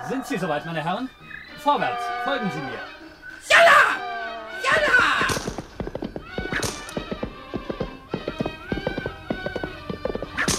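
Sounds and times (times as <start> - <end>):
speech: 0.1 - 3.7
donkeys galloping along the left bank of the Nile, hooves clip-clopping: 4.7 - 10.5.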